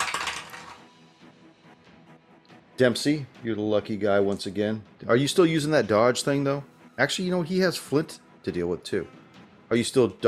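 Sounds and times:
dice clattering down through a dice tower: 0.0 - 0.8
speech: 2.8 - 10.2.

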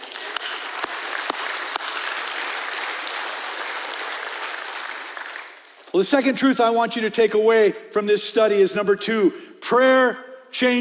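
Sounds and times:
church congregation applauding: 0.0 - 6.2
speech: 5.9 - 10.8.

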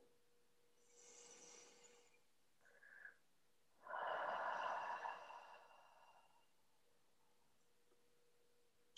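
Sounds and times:
deep inhaling breath: 0.8 - 3.2, 3.8 - 6.6.

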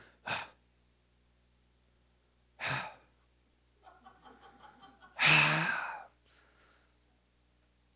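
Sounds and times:
laughter: 3.8 - 5.9
voice imitating a child's grunting from the back seat of a car: 5.2 - 6.0.

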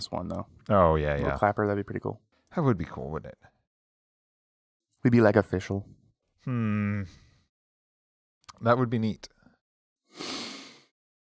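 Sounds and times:
speech: 0.0 - 3.5, 5.0 - 7.2, 8.6 - 9.4
deep inhale through the nose: 10.1 - 10.9.

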